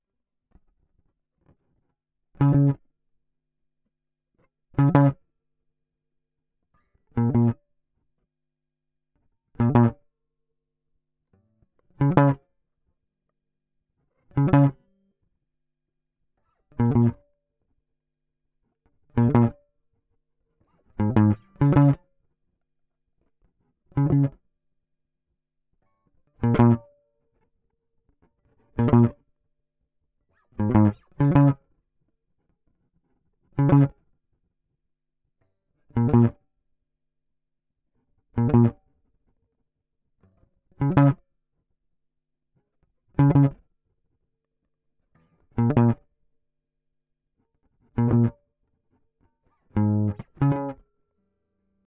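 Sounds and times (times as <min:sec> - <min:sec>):
guitar pluck: 0:02.4 - 0:02.8, 0:04.8 - 0:05.2, 0:07.2 - 0:07.6, 0:09.6 - 0:10.0, 0:12.0 - 0:12.4, 0:14.3 - 0:14.8, 0:16.4 - 0:17.3, 0:19.2 - 0:19.6, 0:21.0 - 0:22.0, 0:24.0 - 0:24.4, 0:25.8 - 0:27.0, 0:28.8 - 0:29.2, 0:30.3 - 0:31.6, 0:33.6 - 0:34.0, 0:36.0 - 0:36.4, 0:38.4 - 0:38.8, 0:40.8 - 0:41.2, 0:43.2 - 0:43.6, 0:45.2 - 0:46.0, 0:48.0 - 0:48.4, 0:49.5 - 0:50.9.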